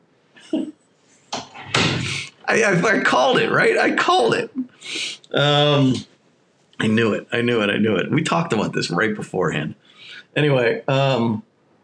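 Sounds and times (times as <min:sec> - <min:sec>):
speech: 0:00.5 - 0:00.8, 0:02.5 - 0:06.1, 0:06.8 - 0:11.5
door shutting with a rush and solid thud: 0:01.4 - 0:02.2.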